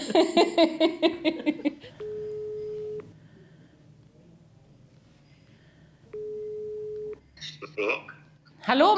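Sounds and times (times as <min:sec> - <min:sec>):
speech: 0:00.1 - 0:01.6, 0:08.7 - 0:08.9
telephone ringing tone while placing a call: 0:02.0 - 0:03.1, 0:06.2 - 0:07.2.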